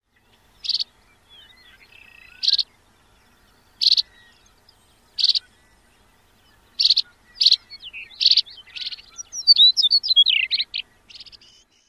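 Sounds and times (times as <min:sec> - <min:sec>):
Chestnut-collared Longspur calls: 0:00.1 - 0:11.8.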